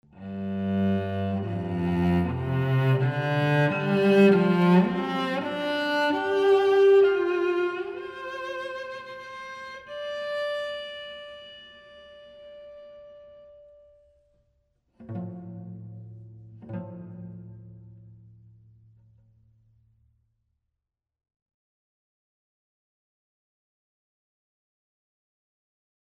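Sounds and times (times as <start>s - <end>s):
cello in a concert hall: 0.0s - 14.4s, 15.0s - 19.3s.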